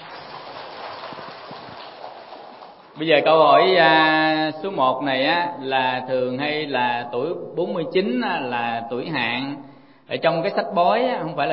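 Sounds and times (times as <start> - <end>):
audience applauding at a dharma talk for business people: 0.0 - 3.1
speech: 3.0 - 11.5.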